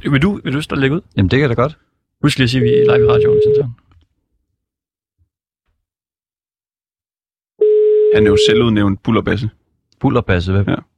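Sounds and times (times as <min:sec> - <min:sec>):
speech: 0:00.0 - 0:03.8, 0:08.1 - 0:10.9
telephone ringing tone on the line: 0:02.6 - 0:03.7, 0:07.6 - 0:08.7.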